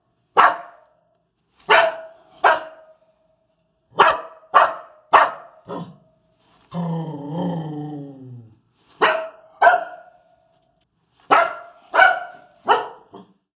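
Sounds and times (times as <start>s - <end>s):
dog barking: 0.3s - 1.0s, 1.7s - 2.9s, 3.9s - 6.0s, 9.0s - 10.2s, 11.3s - 13.4s.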